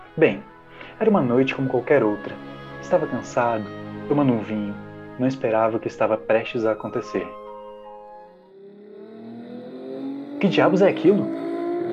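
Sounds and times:
speech: 0.2 - 7.4, 10.4 - 11.4
car engine revving: 8.3 - 11.9.

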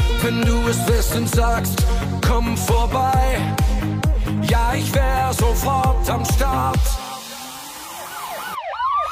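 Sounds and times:
speech: 0.2 - 7.0
emergency vehicle siren wailing: 7.2 - 9.0.

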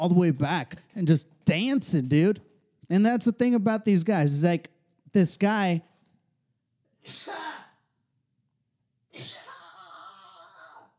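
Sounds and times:
speech: 0.0 - 5.9, 7.0 - 7.6, 9.2 - 9.4
loud sneezes with a breathy tail: 7.0 - 7.9, 9.1 - 10.9.

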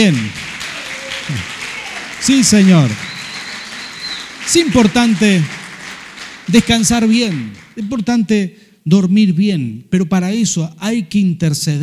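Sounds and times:
speech: 0.0 - 0.4, 2.2 - 3.1, 4.5 - 5.6, 6.5 - 11.8
audience applause: 0.0 - 7.8.

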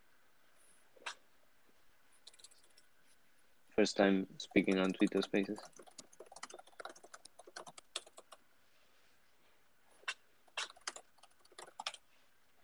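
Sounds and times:
typing on a computer keyboard: 2.2 - 2.8, 4.4 - 8.4, 10.5 - 12.0
speech: 3.8 - 5.9.

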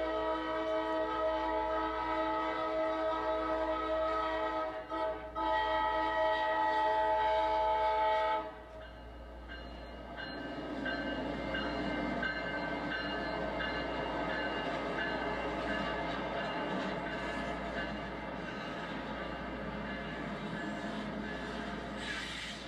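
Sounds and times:
train horn blaring: 0.0 - 8.9
freight train rolling past with rumble and rattle: 0.0 - 22.6.

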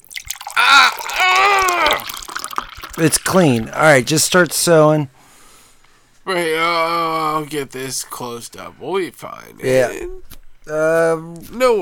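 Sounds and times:
alcohol being poured onto a wound: 0.0 - 3.8
speech: 3.0 - 5.2, 6.3 - 11.8.

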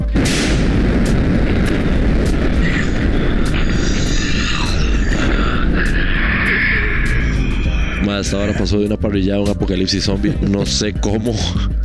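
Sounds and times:
bomb exploding in a video game: 0.1 - 7.3
heavy continuous rumble after video game bomb explosion: 0.1 - 8.7
speech: 8.2 - 11.8.

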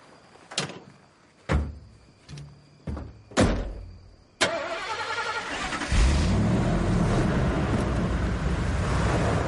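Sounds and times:
clunks and thumps: 0.5 - 4.0
car engine starting: 4.4 - 9.4
car engine rumbling as car accelerates away: 5.4 - 9.4.

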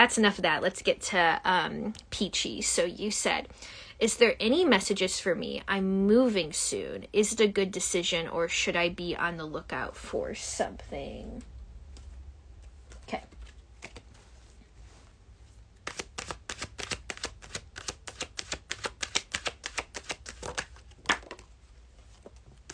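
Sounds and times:
speech: 0.0 - 11.5, 13.1 - 13.4
deck of tarot cards shuffling: 12.7 - 14.2, 15.8 - 22.7.

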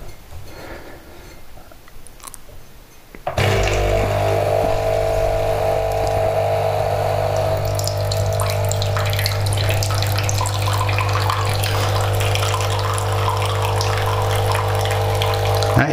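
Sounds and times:
low mechanical hum: 3.2 - 15.9
liquid pouring into a cup: 3.4 - 15.8.

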